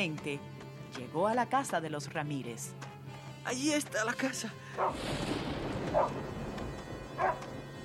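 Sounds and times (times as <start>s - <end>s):
speech: 0.0s - 6.3s, 7.2s - 7.5s
dog barking: 4.8s - 5.0s, 5.9s - 6.2s, 7.2s - 7.5s.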